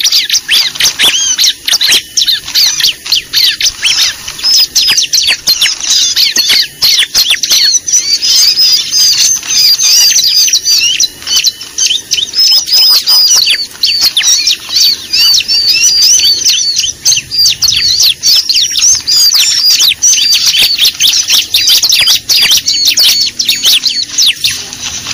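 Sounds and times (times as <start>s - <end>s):
bar-winged prinia lure call: 0.0s - 25.1s.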